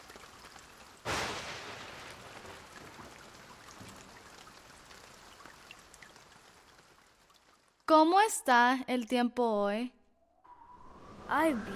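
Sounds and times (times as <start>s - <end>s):
steady rain falling: 0.0s - 8.4s
speech: 7.9s - 10.0s, 11.3s - 11.7s.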